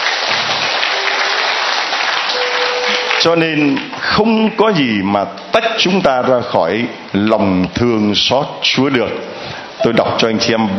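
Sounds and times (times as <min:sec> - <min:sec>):
loud applause from a large crowd: 0:00.0 - 0:04.2
speech: 0:03.2 - 0:10.7.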